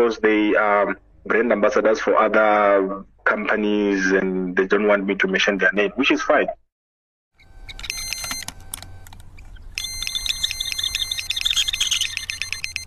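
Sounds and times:
speech: 0:00.0 - 0:06.6
carp fishing bite alarm beeping on rod holder: 0:07.4 - 0:09.1, 0:09.7 - 0:12.8.

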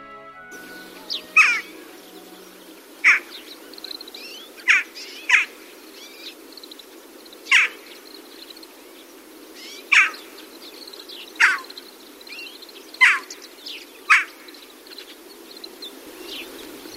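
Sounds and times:
Daurian jackdaw calls at a rice paddy: 0:00.0 - 0:05.6, 0:07.5 - 0:07.9, 0:09.6 - 0:10.3, 0:11.4 - 0:11.7, 0:13.0 - 0:13.4, 0:14.1 - 0:14.4
faint steady hiss: 0:00.0 - 0:16.9.

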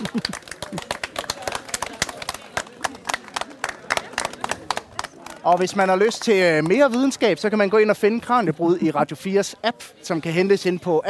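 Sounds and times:
laughter: 0:00.0 - 0:01.4
small group clapping for a guest: 0:00.0 - 0:07.2
speech: 0:05.5 - 0:11.0.

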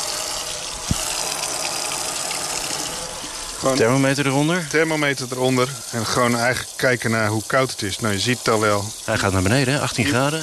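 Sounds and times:
tap water running from an opened faucet: 0:00.0 - 0:10.4
speech: 0:03.6 - 0:10.4.

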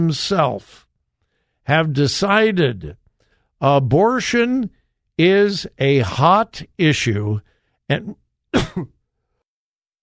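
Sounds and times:
speech: 0:00.0 - 0:00.8, 0:01.6 - 0:03.0, 0:03.6 - 0:09.0
throat clearing: 0:08.5 - 0:09.0.

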